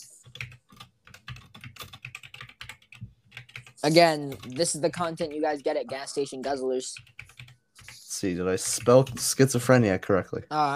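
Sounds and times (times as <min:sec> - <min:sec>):
rapid typing on a computer keyboard: 0:00.2 - 0:05.5, 0:07.0 - 0:07.9, 0:08.6 - 0:09.4
speech: 0:03.8 - 0:07.2, 0:08.2 - 0:10.7.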